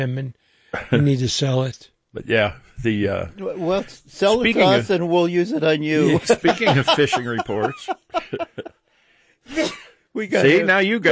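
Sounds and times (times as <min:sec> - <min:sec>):
speech: 0:00.0 - 0:08.8, 0:09.5 - 0:11.1
laughter: 0:03.6 - 0:08.8
person sneezing loudly after a rising inhale: 0:09.5 - 0:10.0.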